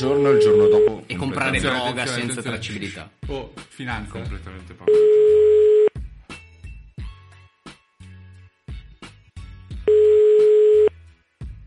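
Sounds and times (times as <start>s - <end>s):
speech: 0.0s - 5.5s
telephone ringing tone on an unanswered call: 0.4s - 0.9s, 4.9s - 5.9s, 9.9s - 10.9s.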